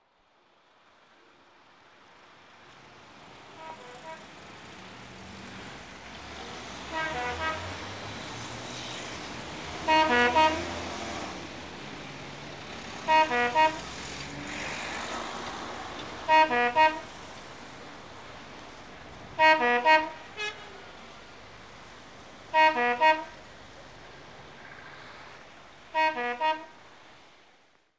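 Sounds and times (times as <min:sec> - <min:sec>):
ambulance: 0:03.4 - 0:21.6, 0:22.5 - 0:24.0, 0:25.9 - 0:26.8.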